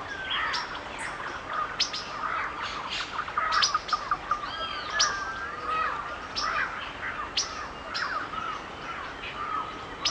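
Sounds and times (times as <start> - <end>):
birds singing in a forest while raining: 0.0 - 10.0
rain in a forest: 0.0 - 10.0.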